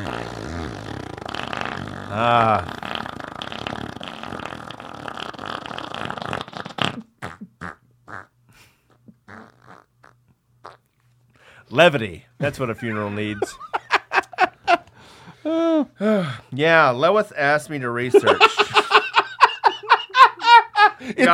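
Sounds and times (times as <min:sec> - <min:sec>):
voice imitating loud nose-blowing honk: 0:00.0 - 0:10.9
speech: 0:02.1 - 0:02.8, 0:11.8 - 0:13.6, 0:16.0 - 0:18.6
laughter: 0:12.5 - 0:14.9, 0:18.1 - 0:21.3.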